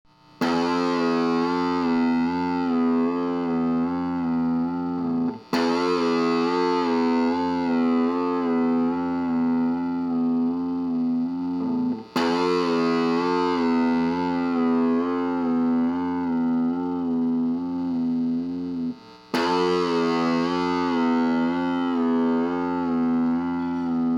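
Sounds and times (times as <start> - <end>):
guitar string bend: 0.4 - 24.1.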